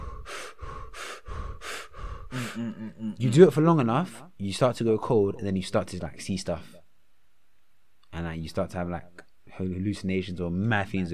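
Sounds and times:
person breathing rapidly and forcefully in a breathwork technique lying down: 0.0 - 2.7
speech: 2.3 - 6.8, 8.2 - 11.1.

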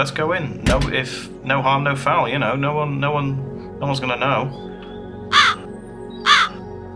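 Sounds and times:
speech: 0.0 - 4.7
crow cawing: 5.3 - 6.7.

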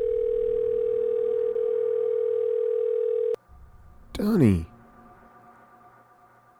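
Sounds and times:
phone line tone through a handset: 0.0 - 3.4
speech: 4.2 - 4.7.

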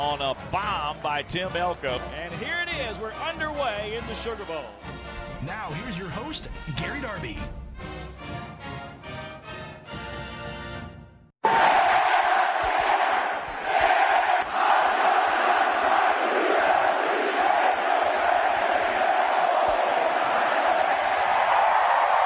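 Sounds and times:
speech: 0.0 - 8.0
crowd of about 20,000 in Omaha cheering after college baseball championship win: 11.4 - 22.2.

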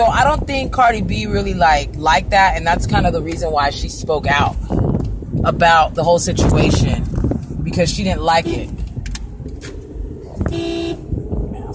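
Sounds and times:
speech: 0.0 - 4.7, 5.4 - 7.0, 7.7 - 8.8
low rumble of traffic in Arizona: 0.0 - 11.7
car horn honking in Arizona traffic: 8.3 - 8.8, 10.4 - 11.1.

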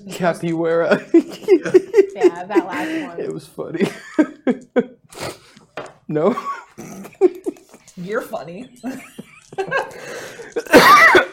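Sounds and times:
speech: 0.0 - 4.9, 6.1 - 6.6, 8.1 - 9.1
man's breathy voiced laughter: 0.8 - 5.0, 6.1 - 7.9, 8.7 - 11.3
loud harsh burst of coughing: 6.3 - 7.7, 10.5 - 11.3.

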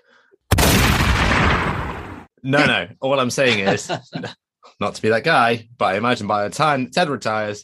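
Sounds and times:
gunshot sound effect: 0.5 - 2.3
speech: 2.4 - 7.6
laughter: 3.4 - 4.4.

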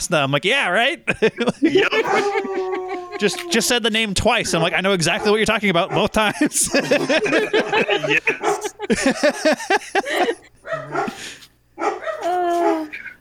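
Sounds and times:
speech: 0.0 - 13.1
laughter: 1.0 - 11.4
dogs barking: 1.6 - 3.8, 4.5 - 13.1
dog yelping whine: 1.9 - 3.6, 10.6 - 11.2, 11.8 - 13.0.

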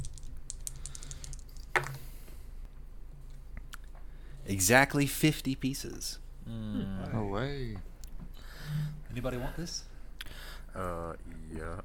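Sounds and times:
dice rattling and clicking across a hard surface: 0.0 - 2.0
speech: 4.5 - 7.9, 8.7 - 9.9, 10.8 - 11.8.

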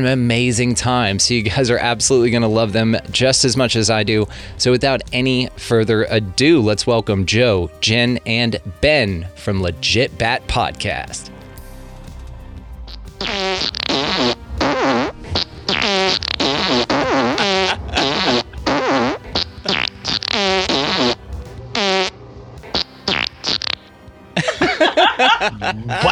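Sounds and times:
speech: 0.0 - 11.4
loud fart sound effects with shifting pitches: 12.9 - 23.9
laughter: 17.3 - 18.7, 24.4 - 26.1.

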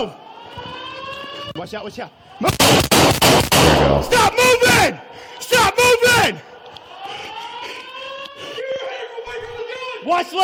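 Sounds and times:
speech: 0.0 - 0.6, 1.6 - 6.5, 10.0 - 10.4
gunshots in recorded footage of a shooting: 2.4 - 4.6.

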